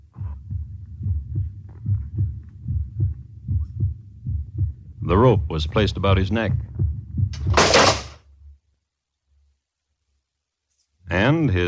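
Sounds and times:
low rumble: 0.0 - 7.7
pounding heartbeat of a condemned man brought to the gibbet: 0.0 - 7.9
speech: 5.1 - 6.8, 11.4 - 11.6.

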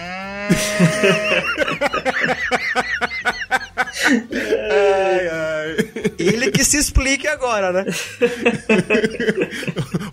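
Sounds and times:
person doing a low drawn-out cow mooing imitation: 0.0 - 1.7
person laughing in rapid bursts: 0.5 - 4.9, 8.0 - 10.1
speech: 0.5 - 10.1.

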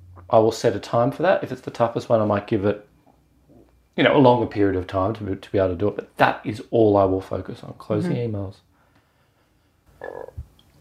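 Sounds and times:
speech: 0.2 - 2.9, 4.0 - 8.7, 10.0 - 10.4
buzzy croak made in a person's throat imitating a frog: 10.0 - 10.5.

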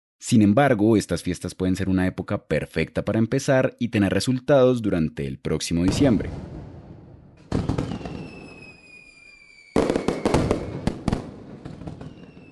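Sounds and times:
speech: 0.2 - 6.6
fireworks exploding with dense crackling and sharp pops: 5.9 - 12.5
thin whistling tones of fireworks trailing through the sky: 7.4 - 12.5.

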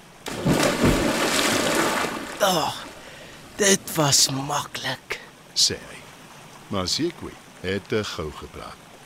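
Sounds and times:
sloshing gurgling river water: 0.0 - 4.3
splash of an animal slipping from the bank into a river: 0.2 - 3.0
speech: 2.4 - 2.8, 3.6 - 6.0, 6.7 - 8.8.

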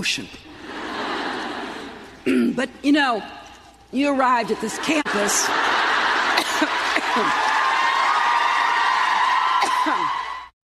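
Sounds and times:
speech: 0.0 - 0.5, 2.2 - 5.7, 6.6 - 7.5
laughter: 0.5 - 2.2, 4.4 - 8.5
large audience cheering: 4.6 - 10.6.

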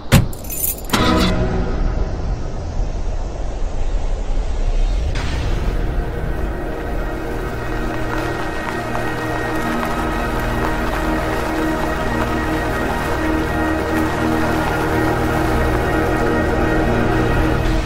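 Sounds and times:
keys jingling: 0.0 - 1.0
road hum inside a car: 1.6 - 17.8.

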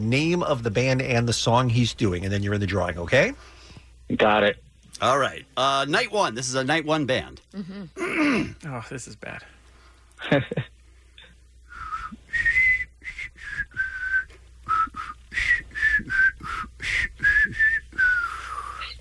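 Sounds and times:
speech: 0.0 - 9.6, 10.2 - 10.7
person whistling a song slowly: 11.7 - 18.9.

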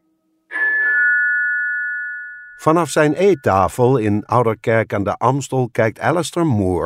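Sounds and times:
electronic doorbell chime at a bungalow in Greater London: 0.5 - 3.9
speech: 2.6 - 6.8.

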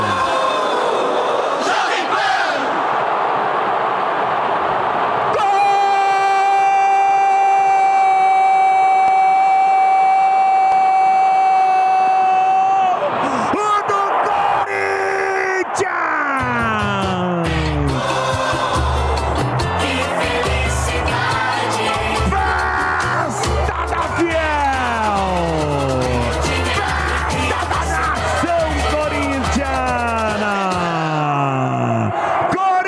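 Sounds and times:
stadium crowd roaring in goal celebration: 0.0 - 32.8
person shouting a long sustained cry: 5.4 - 18.0, 30.3 - 32.8.

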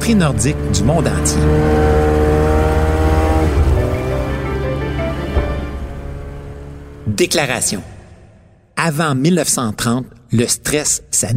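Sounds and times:
speech: 0.0 - 2.2, 7.2 - 7.9, 8.8 - 11.3
Ski-Doo snowmobile engine droning: 0.0 - 8.2.

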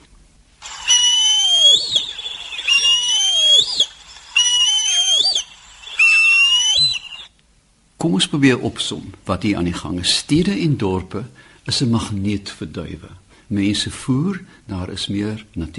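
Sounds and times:
African harrier-hawk giving high plaintive whistles: 0.6 - 7.3
speech: 8.0 - 15.7.

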